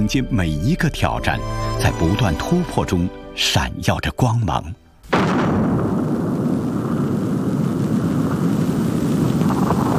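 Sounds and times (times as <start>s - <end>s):
speech: 0.0s - 5.5s
hydrogen bomb explosion roar: 5.1s - 9.9s.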